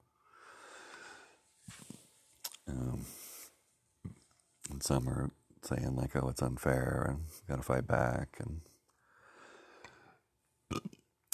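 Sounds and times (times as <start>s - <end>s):
speech: 2.7s - 3.2s, 4.8s - 8.7s
loud burp: 10.7s - 11.0s.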